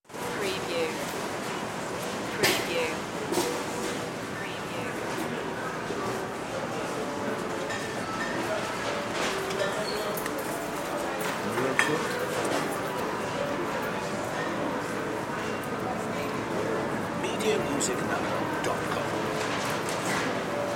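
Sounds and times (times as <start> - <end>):
grocery store ambience: 0.0 - 20.7.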